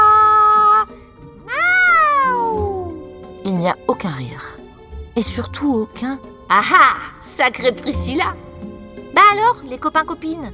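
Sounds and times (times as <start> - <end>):
person imitating cat meows: 0.0 - 0.9, 1.5 - 3.0
speech: 5.2 - 8.5, 9.3 - 10.5.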